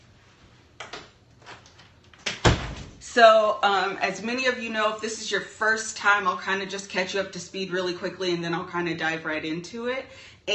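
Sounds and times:
door creaking and rustling indoors: 0.8 - 3.0
door shutting with a solid thump indoors: 2.2 - 3.0
speech: 3.1 - 10.5.

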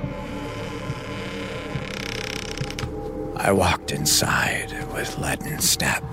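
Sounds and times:
door creaking open: 0.0 - 3.1
speech: 3.4 - 6.1.

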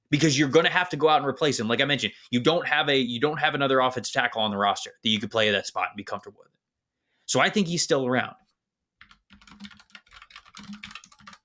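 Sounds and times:
speech: 0.1 - 6.6, 7.3 - 8.4
typing on a mechanical keyboard: 9.0 - 11.4.

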